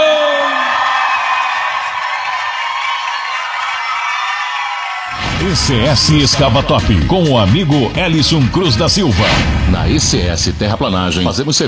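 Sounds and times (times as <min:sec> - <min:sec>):
falling whoop: 0:00.0 - 0:05.2
loud shouting roar: 0:00.0 - 0:05.3
speech: 0:05.5 - 0:11.6.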